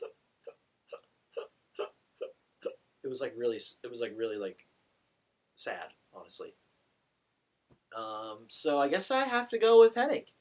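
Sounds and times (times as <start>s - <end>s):
voice imitating hiccups: 0.0s - 2.8s
speech: 3.1s - 4.7s, 5.6s - 6.6s, 7.9s - 10.3s.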